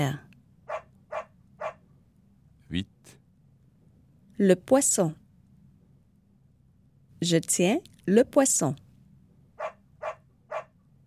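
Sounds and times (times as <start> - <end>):
speech: 0.0 - 0.3, 2.7 - 2.9, 4.4 - 5.2, 7.2 - 8.8
dog barking: 0.7 - 1.8, 9.6 - 10.8.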